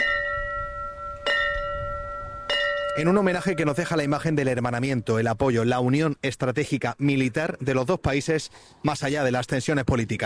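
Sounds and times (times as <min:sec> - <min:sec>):
memorial bell tolling in honor of firefighters: 0:00.0 - 0:04.0
speech: 0:03.0 - 0:10.2.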